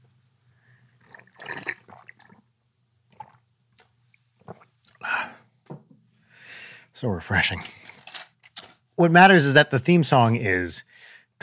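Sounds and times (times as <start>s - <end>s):
water glugging and splashing out of a bottle: 1.0s - 2.4s
speech: 7.0s - 7.8s, 9.0s - 11.4s.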